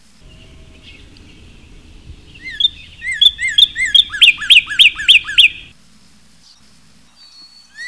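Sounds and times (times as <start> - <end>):
cardinal bird calls: 0.2 - 5.7.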